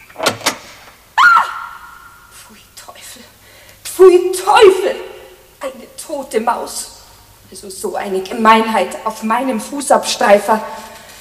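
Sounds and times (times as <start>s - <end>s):
apartment door latch clicks: 0.0s - 0.8s
speech: 2.5s - 3.2s, 4.0s - 6.9s, 7.5s - 10.8s.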